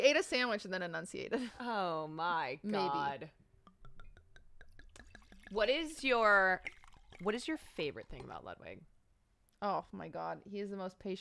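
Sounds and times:
speech: 0.0s - 3.4s, 5.5s - 8.9s, 9.6s - 11.1s
wine glugging from a bottle into a glass: 3.6s - 8.5s.

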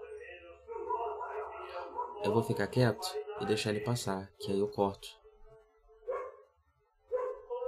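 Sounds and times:
dog barking: 0.7s - 2.3s, 6.1s - 6.5s, 7.1s - 7.5s
speech: 2.2s - 5.2s.

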